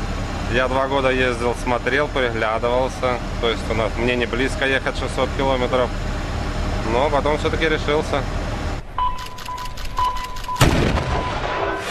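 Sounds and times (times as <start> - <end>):
tractor engine wash: 0.0 - 11.8
speech: 0.5 - 6.1, 6.8 - 8.4
short tonal beeps: 9.0 - 11.8
cannon shot starting a tractor race: 10.6 - 11.8.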